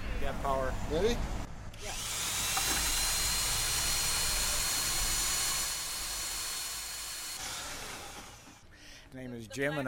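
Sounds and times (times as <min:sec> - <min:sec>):
speech: 0:00.3 - 0:02.0, 0:09.1 - 0:09.8
power mixer stirring grout: 0:01.8 - 0:08.6.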